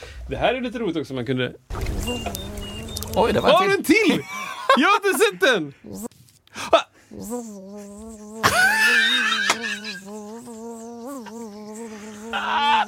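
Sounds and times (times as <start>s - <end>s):
speech: 0.3s - 6.1s, 7.2s - 11.4s
bumblebee buzzing in a low droning hum: 1.8s - 3.7s, 7.1s - 12.8s
laughter: 4.0s - 5.6s, 8.4s - 10.0s.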